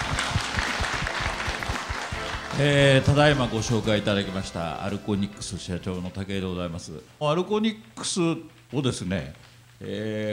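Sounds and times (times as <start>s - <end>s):
audience applause welcoming a company president: 0.0s - 3.8s
speech: 2.6s - 10.3s.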